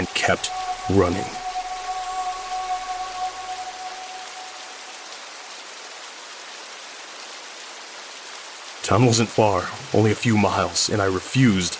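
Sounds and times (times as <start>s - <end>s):
faint sustained hum: 0.0s - 5.1s
steady rain falling on a surface: 0.0s - 11.7s
speech: 0.2s - 1.4s, 8.9s - 11.7s.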